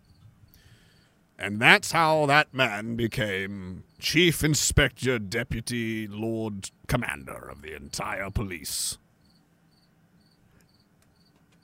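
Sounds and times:
cricket chirping in short high-pitched trills: 0.0s - 1.2s, 9.2s - 11.6s
low hiss: 0.0s - 11.6s
speech: 1.4s - 9.0s.

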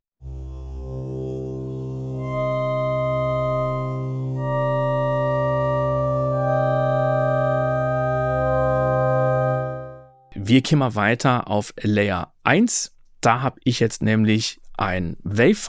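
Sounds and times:
sustained synthesizer notes played on a keyboard from low to high: 0.2s - 10.4s
speech: 10.5s - 15.6s.

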